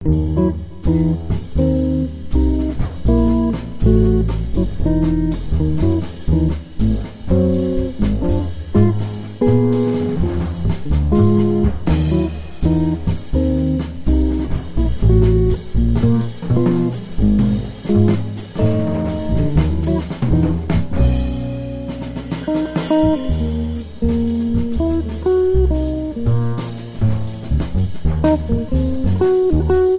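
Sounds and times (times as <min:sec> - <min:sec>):
blues music in E flat: 0:00.0 - 0:29.9.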